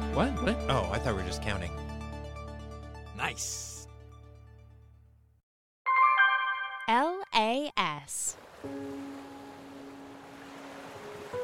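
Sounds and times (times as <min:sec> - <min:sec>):
speech: 0:00.2 - 0:01.9, 0:03.2 - 0:03.7, 0:06.9 - 0:09.2
steady continuous wash of ocean surf: 0:08.4 - 0:11.4.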